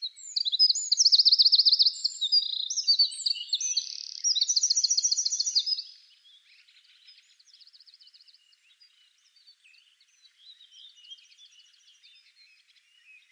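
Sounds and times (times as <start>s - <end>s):
Eurasian wren Troglodytes troglodytes song: 0.0s - 13.3s.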